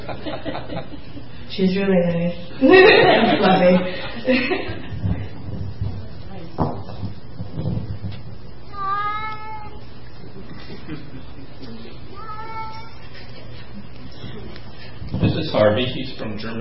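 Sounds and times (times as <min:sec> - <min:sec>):
laughter: 0:00.0 - 0:01.3, 0:02.6 - 0:05.0, 0:10.2 - 0:12.0
low steady hum: 0:00.0 - 0:16.6
speech: 0:00.2 - 0:04.8, 0:15.5 - 0:16.6
male farm cat crying plaintive meows: 0:08.7 - 0:09.8, 0:12.1 - 0:13.0.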